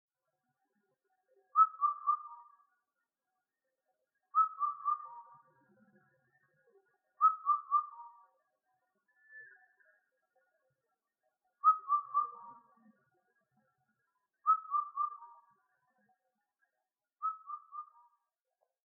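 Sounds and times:
Indian cuckoo calling: 1.6 - 2.5, 4.4 - 5.4, 7.2 - 8.2, 11.6 - 12.7, 14.5 - 15.5, 17.2 - 18.1.

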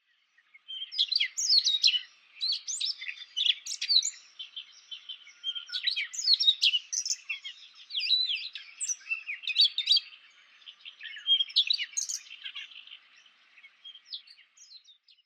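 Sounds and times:
Siberian rubythroat singing: 0.0 - 15.2.

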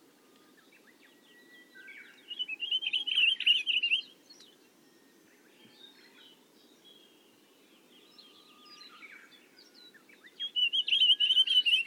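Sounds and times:
pine grosbeak singing: 0.3 - 11.8.

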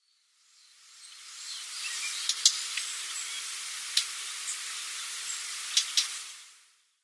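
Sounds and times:
Korean Bush Warbler calling: 1.0 - 6.3.

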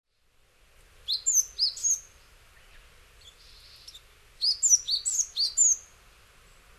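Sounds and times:
Japanese tit chirping in Hyogo Japan in October: 1.1 - 5.9.

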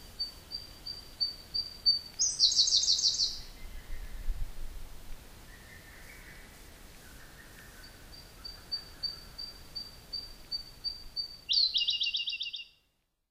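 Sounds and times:
Siberian blue robin singing: 0.0 - 4.3, 7.1 - 12.9.

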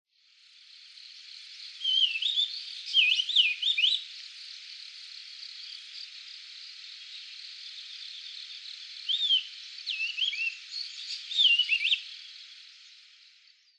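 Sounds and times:
bearded reedling calling: 1.8 - 4.1, 9.0 - 12.2.

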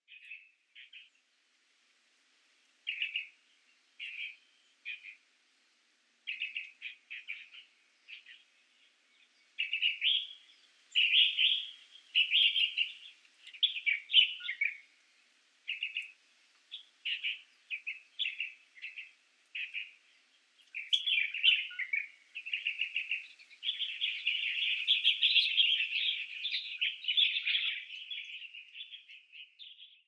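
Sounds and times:
shirogashira bird call: 2.9 - 3.4, 4.0 - 5.2, 6.3 - 8.9, 9.6 - 14.9, 15.7 - 30.0.

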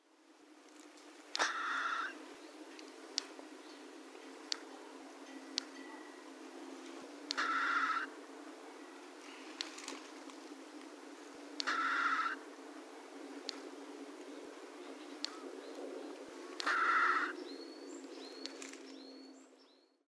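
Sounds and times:
Japanese tit calling in Fukuoka: 1.4 - 2.2, 7.3 - 8.2, 11.6 - 12.4, 16.6 - 17.4.

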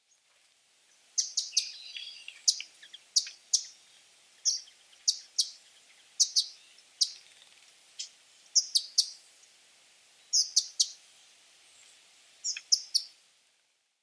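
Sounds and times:
Spotted Flycatcher call: 1.2 - 9.2, 10.3 - 11.0, 12.4 - 13.1.

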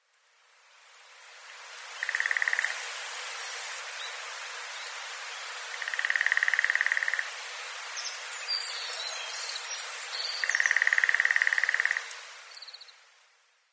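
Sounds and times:
lesser spotted woodpecker calling: 2.0 - 2.8, 5.8 - 7.2, 10.4 - 12.1.

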